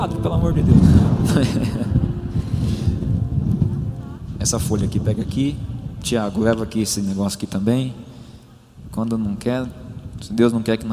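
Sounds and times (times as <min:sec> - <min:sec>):
speech: 0:00.0 - 0:02.0, 0:04.4 - 0:08.1, 0:08.9 - 0:10.9
faint voices murmuring: 0:00.0 - 0:06.8
steady wind buffeting an outdoor microphone: 0:00.0 - 0:10.9
laughter: 0:01.2 - 0:02.4.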